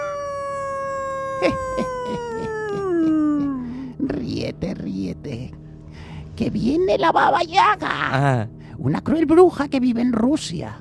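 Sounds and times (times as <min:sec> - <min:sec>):
wolf howling: 0:00.0 - 0:03.2
speech: 0:01.4 - 0:02.3, 0:04.4 - 0:05.6, 0:06.4 - 0:10.7.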